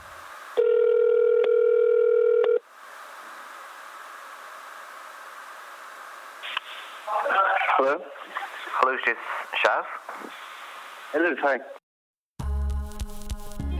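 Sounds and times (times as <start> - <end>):
quiet phone line hiss: 0.0 - 10.8
telephone ringback tone on an outgoing call to the United States: 0.6 - 2.6
speech: 7.8 - 8.2, 8.8 - 10.4, 11.1 - 11.8.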